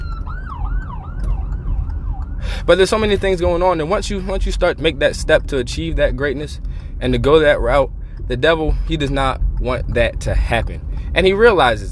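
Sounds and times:
ambulance siren wailing: 0.0s - 3.9s
deep rumble of road traffic: 0.0s - 11.8s
speech: 2.6s - 11.8s.

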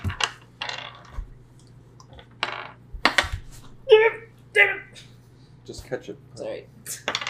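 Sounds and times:
small six-sided die clattering on a hard surface: 0.0s - 1.3s, 2.1s - 3.5s, 7.0s - 7.2s
speech: 5.9s - 7.0s.

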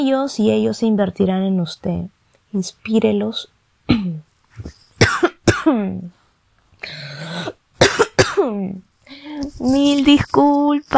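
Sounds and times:
speech: 0.0s - 4.8s, 5.6s - 6.2s, 8.4s - 10.9s
person coughing: 3.9s - 4.2s, 5.0s - 5.9s, 7.2s - 8.6s.

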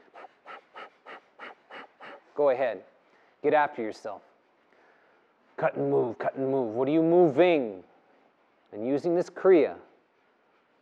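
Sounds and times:
rapid forceful Kapalabhati nasal exhalations: 0.0s - 2.4s
speech: 2.4s - 4.3s, 5.6s - 7.9s, 8.7s - 9.9s.

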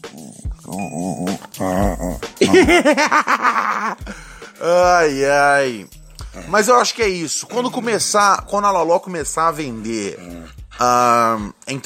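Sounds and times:
dog grumbling with wavering moaning growls: 0.0s - 2.5s, 6.2s - 6.9s, 9.8s - 11.5s
speech: 1.6s - 11.8s
laughter: 1.7s - 4.2s.

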